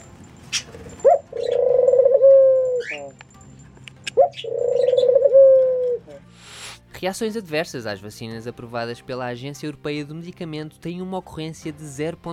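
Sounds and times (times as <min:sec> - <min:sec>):
pigeon cooing: 0:00.5 - 0:03.2, 0:04.1 - 0:06.2
speech: 0:07.0 - 0:12.3.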